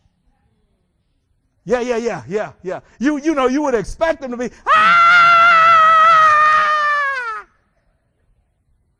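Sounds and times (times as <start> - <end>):
speech: 1.6 - 5.0
person imitating a high-pitched scream: 4.7 - 7.5.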